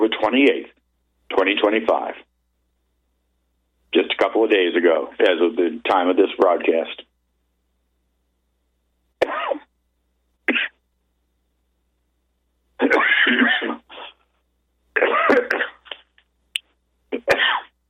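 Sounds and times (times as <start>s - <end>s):
speech: 0.2s - 2.3s, 3.9s - 7.1s
person in a coughing fit with harsh raspy hacking: 9.2s - 9.7s, 10.5s - 10.8s, 12.8s - 14.2s, 15.0s - 16.1s, 17.1s - 17.7s.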